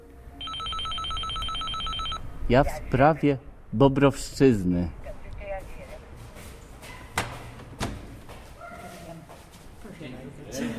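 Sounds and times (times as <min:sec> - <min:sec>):
telephone ringing with electronic trill: 0:00.4 - 0:02.2
speech: 0:02.5 - 0:05.0.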